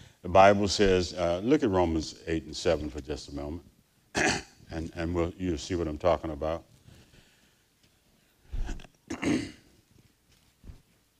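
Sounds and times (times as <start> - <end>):
speech: 0.2 - 6.7
person clearing throat: 4.2 - 4.6, 8.6 - 9.7.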